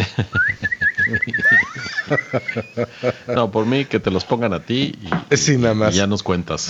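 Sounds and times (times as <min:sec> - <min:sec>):
laughter: 0:00.0 - 0:05.0
high warbling bird-like whistle sound effect: 0:00.4 - 0:03.0
speech: 0:02.1 - 0:06.6.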